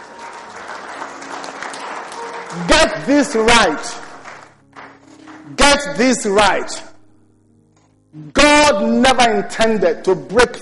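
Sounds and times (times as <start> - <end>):
crowd applauding: 0.0 - 5.9
speech: 2.5 - 4.0, 5.7 - 6.9, 8.2 - 10.5.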